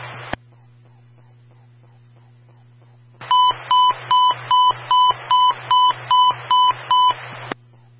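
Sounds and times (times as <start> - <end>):
burst of static on a fire-department radio channel: 0.0 - 0.4, 3.2 - 7.6
low hum: 0.0 - 7.9
short high beeps of an emergency transmission tone test: 3.3 - 7.2.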